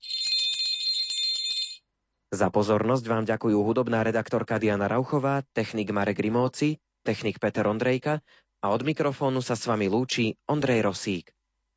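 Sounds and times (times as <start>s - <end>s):
small hand bell ringing: 0.0s - 1.8s
speech: 2.3s - 11.4s.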